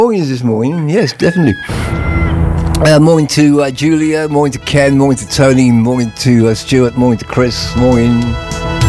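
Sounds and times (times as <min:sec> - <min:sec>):
speech: 0:00.0 - 0:02.2, 0:02.8 - 0:08.7
electronic phone ringtone: 0:01.2 - 0:03.4.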